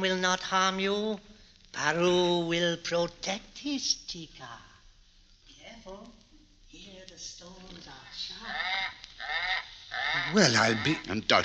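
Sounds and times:
speech: 0.0s - 4.7s, 7.2s - 11.4s
low voices: 8.3s - 11.4s
cormorant squawking: 8.4s - 11.2s.

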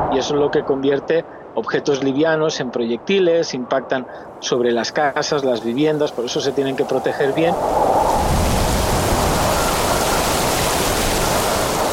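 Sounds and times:
speech: 0.2s - 8.4s
heavy tropical rain storm: 4.9s - 11.9s.

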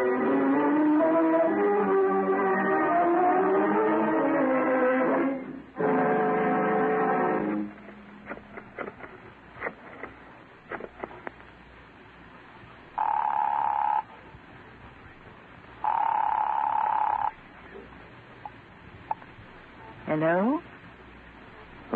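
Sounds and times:
faint hiss: 0.0s - 21.9s
telephone in a telephone booth ringing: 13.0s - 14.1s, 15.8s - 17.4s.

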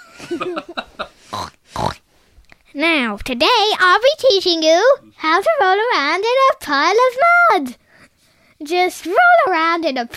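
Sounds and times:
speech: 0.2s - 1.4s, 2.8s - 7.8s, 8.6s - 10.1s
person making loud breathy pig snorts: 1.2s - 2.0s
person imitating pig grunting oinks: 1.3s - 2.0s.

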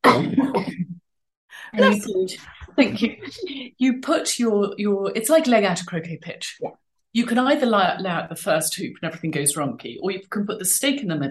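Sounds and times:
person coughing roughly: 0.0s - 0.9s
speech: 1.8s - 11.2s.

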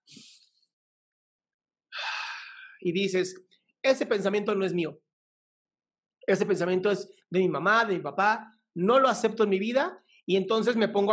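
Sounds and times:
deep breath drawn in sharply: 1.9s - 2.8s
long airy exhale: 2.0s - 2.8s
speech: 2.8s - 5.0s, 6.3s - 11.1s.

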